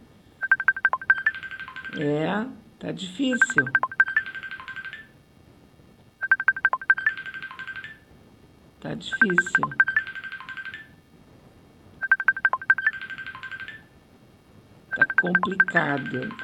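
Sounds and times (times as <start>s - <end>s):
electronic telephone keypad beeps dialing a phone number: 0.4s - 2.0s, 3.4s - 5.1s, 6.2s - 8.0s, 9.1s - 10.9s, 12.0s - 13.9s, 14.9s - 16.4s
speech: 1.9s - 3.9s, 8.9s - 9.9s, 15.2s - 16.4s.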